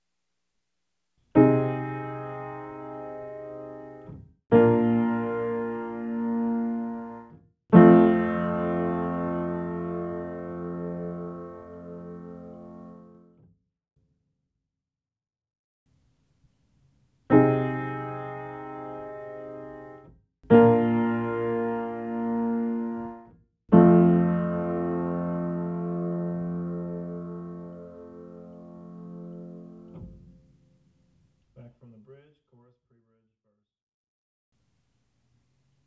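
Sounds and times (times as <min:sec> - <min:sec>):
piano samples: 0:01.3 - 0:13.4, 0:17.3 - 0:30.8.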